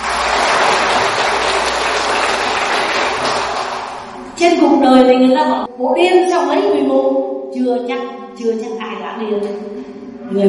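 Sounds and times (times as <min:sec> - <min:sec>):
large crowd applauding: 0:00.0 - 0:04.2
speech: 0:04.4 - 0:10.4.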